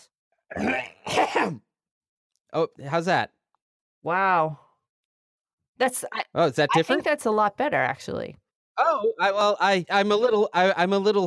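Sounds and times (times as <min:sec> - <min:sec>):
person clearing throat: 0:00.5 - 0:01.6, 0:08.8 - 0:09.0
speech: 0:00.5 - 0:01.7, 0:02.5 - 0:03.4, 0:04.0 - 0:04.6, 0:05.8 - 0:11.2.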